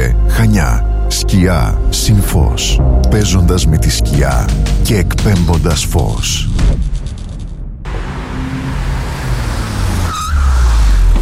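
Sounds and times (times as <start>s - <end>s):
speech: 0.6s - 6.8s
used car engine roaring and revving: 7.8s - 11.2s.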